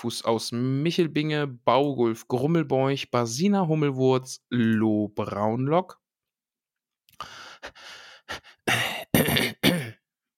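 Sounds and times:
speech: 0:00.0 - 0:06.0, 0:07.2 - 0:09.5
person clearing throat in raspy breathy bursts: 0:08.7 - 0:10.0.

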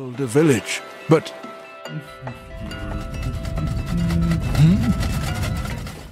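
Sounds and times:
wind blowing: 0:02.3 - 0:06.0.

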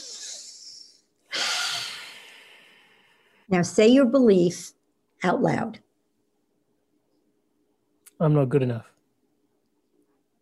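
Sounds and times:
group taking a deep breath together: 0:01.3 - 0:03.5
speech: 0:03.5 - 0:05.9, 0:08.2 - 0:08.9.

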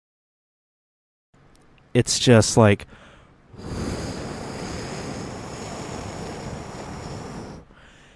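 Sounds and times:
speech: 0:02.0 - 0:03.0
howling hurricane wind roaring: 0:03.5 - 0:07.7
thin high whine: 0:03.6 - 0:07.8.

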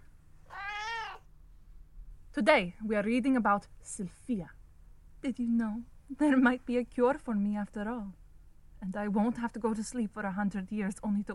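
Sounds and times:
cat meowing: 0:00.4 - 0:01.3
speech: 0:02.4 - 0:04.6, 0:05.2 - 0:08.2, 0:08.8 - 0:11.3.

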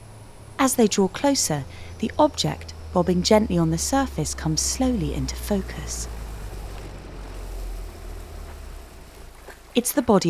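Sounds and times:
boat engine rumbling: 0:00.0 - 0:10.2
speech: 0:00.6 - 0:06.2, 0:09.8 - 0:10.2
boat wash and spray on a smooth sea: 0:04.9 - 0:09.8.

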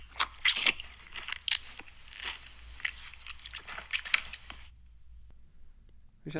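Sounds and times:
wet chewing with loud smacks and crisp crunches: 0:00.0 - 0:04.8.

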